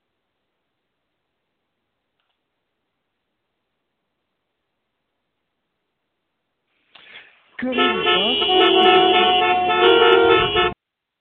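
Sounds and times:
low rumble of traffic: 7.0s - 10.8s
speech: 7.6s - 10.1s
car horns honking in traffic: 7.6s - 10.8s.

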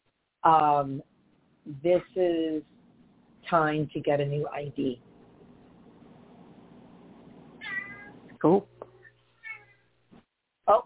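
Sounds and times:
low hum: 0.1s - 10.8s
speech: 0.4s - 2.8s, 3.5s - 5.1s, 8.4s - 8.7s
mother cat meowing: 7.6s - 8.2s, 9.4s - 9.9s.

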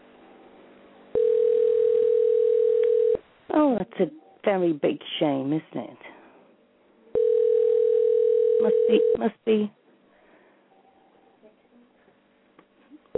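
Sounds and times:
telephone dial tone after a call is cut off: 1.2s - 3.2s, 7.2s - 9.2s
speech: 3.6s - 6.1s, 8.6s - 9.8s.

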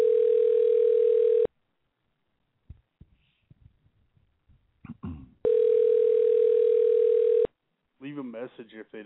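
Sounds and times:
telephone dial tone while calling someone back: 0.0s - 1.5s, 5.5s - 7.5s
speech: 8.6s - 9.0s.

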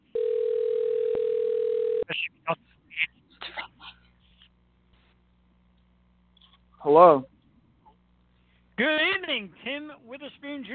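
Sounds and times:
telephone dial tone: 0.1s - 2.0s
speech: 2.2s - 3.1s, 6.9s - 7.3s, 8.8s - 10.7s.

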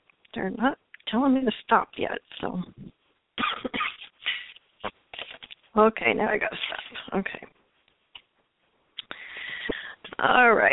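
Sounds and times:
speech: 0.4s - 2.8s, 5.8s - 7.5s, 10.2s - 10.7s
dry hacking cough: 3.4s - 4.1s.

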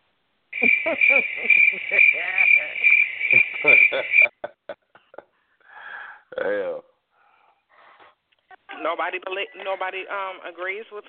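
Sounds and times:
loud steady high-pitched cricket trill: 0.5s - 4.3s
laughter: 0.6s - 5.4s
speech: 0.8s - 4.8s, 6.3s - 6.9s, 8.8s - 11.0s.

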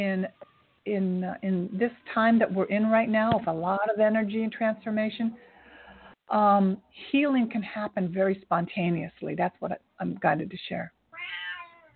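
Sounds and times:
speech: 0.0s - 5.5s, 6.3s - 11.0s
cat meowing: 11.1s - 11.9s.

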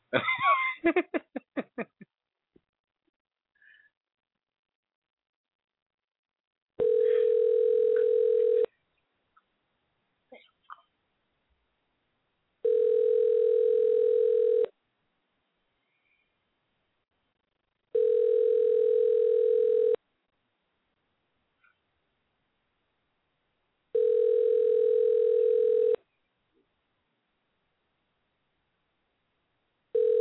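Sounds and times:
people laughing: 0.2s - 2.0s
phone ringback tone on an unanswered call: 6.8s - 8.7s, 12.6s - 14.7s, 17.9s - 20.0s, 24.0s - 26.0s, 30.0s - 30.1s.

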